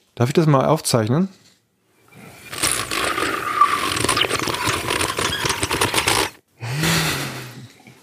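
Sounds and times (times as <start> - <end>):
speech: 0.2 - 1.4
blowing across an open cola can like a flute: 2.2 - 6.4.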